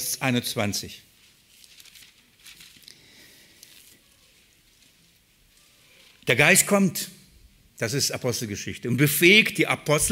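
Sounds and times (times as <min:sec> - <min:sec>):
steady faint hiss: 0:00.0 - 0:08.8
speech: 0:00.2 - 0:01.1, 0:06.3 - 0:07.2, 0:07.8 - 0:10.1
thin Bible pages rustling as they are turned: 0:01.1 - 0:06.3.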